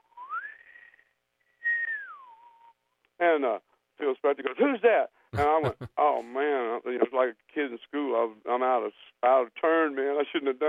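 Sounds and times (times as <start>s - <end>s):
person whistling a tune: 0.2s - 1.0s, 1.6s - 2.7s
speech: 3.2s - 10.6s
laughter: 5.4s - 5.9s.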